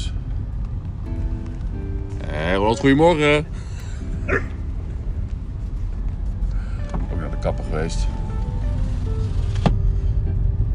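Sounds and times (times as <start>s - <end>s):
low rumble: 0.0s - 10.7s
speech: 2.6s - 3.6s, 4.3s - 4.6s, 7.4s - 8.2s
dog barking: 4.3s - 4.6s.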